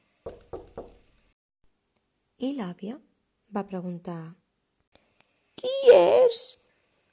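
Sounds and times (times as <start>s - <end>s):
firm knocking on a wooden door: 0.2s - 1.0s
speech: 2.4s - 4.4s, 5.6s - 6.6s.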